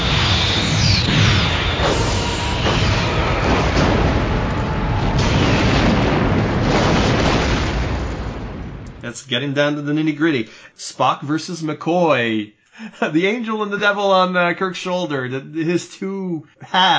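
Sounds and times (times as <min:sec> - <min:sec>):
explosion sound effect: 0:00.0 - 0:09.1
speech: 0:09.2 - 0:16.9.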